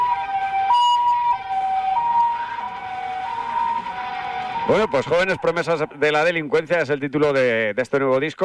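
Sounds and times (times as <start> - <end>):
two-tone sirens wailing: 0.0 - 6.3
faint traffic rumble: 0.0 - 7.9
speech: 4.7 - 8.4.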